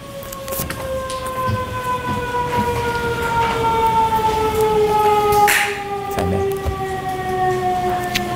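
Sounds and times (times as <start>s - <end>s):
siren wailing: 0.0s - 8.3s.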